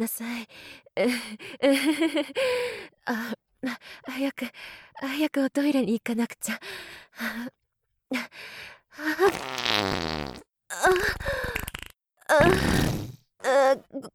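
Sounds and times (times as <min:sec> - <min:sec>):
speech: 0:00.0 - 0:11.7, 0:12.3 - 0:14.1
loud farts: 0:09.3 - 0:10.4, 0:11.6 - 0:13.2
short breathy vocal noises: 0:10.7 - 0:14.1.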